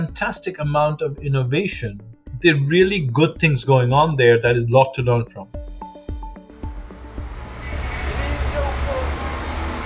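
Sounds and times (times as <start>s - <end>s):
speech: 0.1s - 5.6s
steady roar of passing city street traffic: 6.5s - 9.8s
city bustle: 6.6s - 9.8s.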